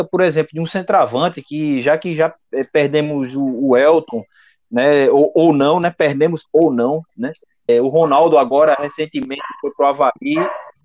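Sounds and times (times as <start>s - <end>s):
speech: 0.0s - 10.8s
dog barking: 8.0s - 10.8s.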